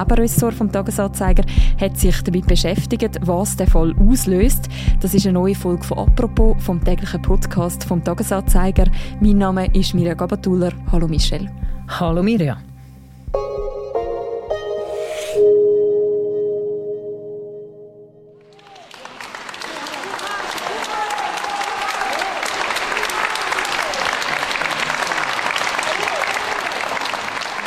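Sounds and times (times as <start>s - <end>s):
speech: 0.0s - 12.7s
short musical passage: 0.0s - 18.5s
loud sustained applause in a courtroom: 18.4s - 27.6s.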